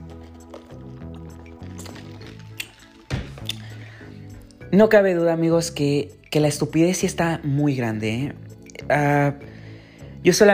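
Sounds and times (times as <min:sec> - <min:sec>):
sipping and swallowing water: 0:00.0 - 0:04.6
glass set down with a clunk: 0:01.8 - 0:03.7
speech: 0:04.7 - 0:09.5, 0:10.2 - 0:10.5.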